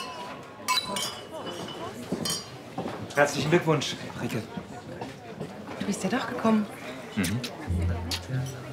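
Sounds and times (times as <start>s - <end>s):
glasses clinking in a toast: 0.0s - 2.6s
speech: 0.9s - 1.2s, 3.2s - 4.7s, 5.9s - 8.6s.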